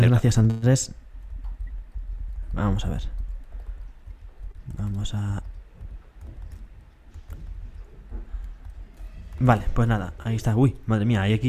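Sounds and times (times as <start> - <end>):
speech: 0.0 - 1.0, 2.6 - 3.2, 4.7 - 5.5, 9.4 - 11.4
loud heavy thuds in hallway: 1.0 - 11.0
running footsteps in hallway: 1.0 - 11.4.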